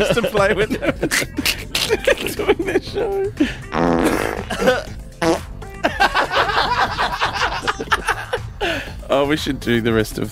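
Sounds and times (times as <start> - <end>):
laughter: 0.0 - 3.6, 4.4 - 4.9, 5.8 - 8.9
speech: 0.0 - 5.4, 9.1 - 10.3
fart sound effect: 3.7 - 5.5.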